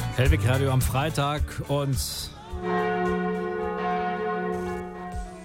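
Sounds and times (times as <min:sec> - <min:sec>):
speech: 0:00.2 - 0:03.4
wedding church bells ringing: 0:02.6 - 0:05.4.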